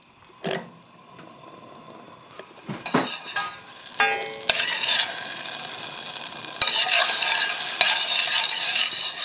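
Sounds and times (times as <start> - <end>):
onion frying in butter in saucepan: 0.0 - 9.2
clinks and scrapes of stirring in saucepan: 2.8 - 5.1, 6.6 - 9.2.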